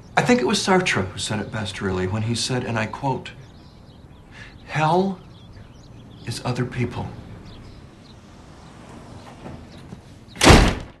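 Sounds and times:
speech: 0.3s - 3.4s, 4.7s - 5.3s, 6.3s - 7.2s
door slamming shut: 8.9s - 10.9s.

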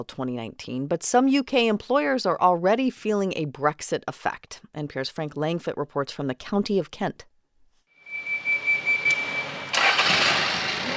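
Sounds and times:
speech: 0.0s - 7.3s
forklift engine starting and revving: 9.0s - 10.9s.

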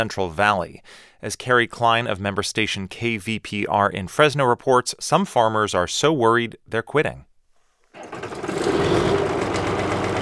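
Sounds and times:
speech: 0.0s - 7.3s
green diesel farm tractor starting up in California's San Joaquin Valley: 8.0s - 10.2s.

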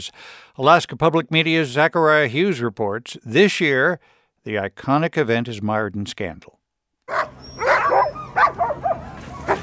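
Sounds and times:
speech: 0.0s - 7.4s
excited sled dogs barking and yipping in Anchorage, Alaska: 7.1s - 9.6s.

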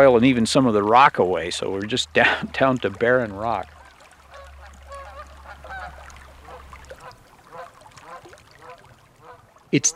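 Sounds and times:
speech: 0.0s - 3.8s, 9.7s - 9.9s
flock of geese honking near ponds among hummocks: 3.5s - 9.9s.

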